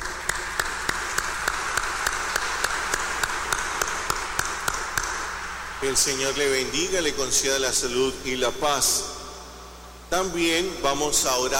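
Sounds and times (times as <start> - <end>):
audience applauding: 0.0 - 5.8
sharp evenly spaced claps in a steady beat: 0.0 - 6.5
speech: 5.8 - 9.1, 10.1 - 11.5.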